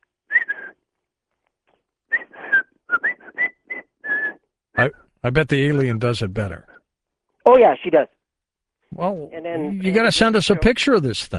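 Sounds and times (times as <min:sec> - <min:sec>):
person whistling a jaunty march melody: 0:00.3 - 0:00.8, 0:02.1 - 0:04.5
speech: 0:04.8 - 0:06.7, 0:07.4 - 0:08.2, 0:09.0 - 0:11.3.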